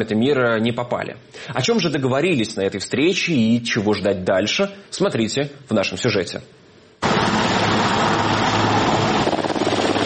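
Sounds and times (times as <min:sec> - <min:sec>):
speech: 0:00.0 - 0:06.6
helicopter flying overhead: 0:07.0 - 0:10.0.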